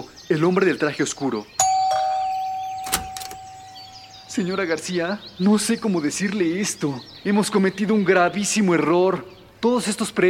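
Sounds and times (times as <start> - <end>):
speech: 0.3 - 1.6, 4.4 - 10.2
electronic doorbell ringing: 1.6 - 4.6.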